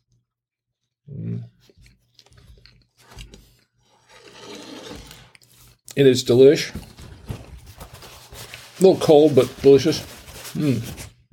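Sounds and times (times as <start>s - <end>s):
speech: 1.1s - 2.0s, 6.0s - 6.9s, 8.8s - 11.1s
chewing a big bite of a slightly cold burger: 1.5s - 3.8s.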